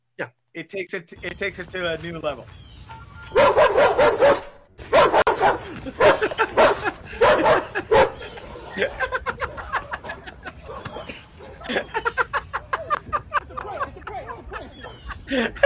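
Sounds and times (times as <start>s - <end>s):
speech: 0.2s - 2.6s, 5.8s - 6.5s
dog yipping: 2.8s - 8.5s, 10.7s - 11.6s
dog barking: 3.3s - 11.7s
laughter: 5.4s - 15.6s.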